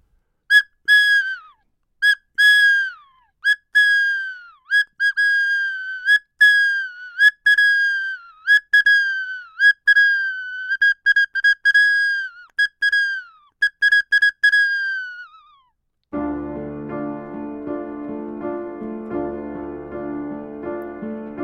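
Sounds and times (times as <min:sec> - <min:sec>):
toy whistle blown in shrill toots: 0:00.5 - 0:15.7
music with a lower fuller tone: 0:16.2 - 0:21.4.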